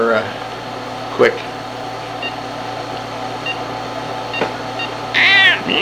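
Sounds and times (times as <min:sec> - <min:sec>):
speech: 0:00.2 - 0:00.4, 0:01.2 - 0:01.5
cat meowing: 0:05.2 - 0:05.7.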